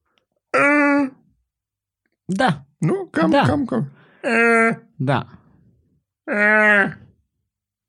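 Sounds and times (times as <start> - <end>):
voiced vocal imitation of a stifled yawn: 0.5 - 1.3, 4.0 - 4.9, 6.2 - 7.2
speech: 2.3 - 5.4, 6.3 - 7.0.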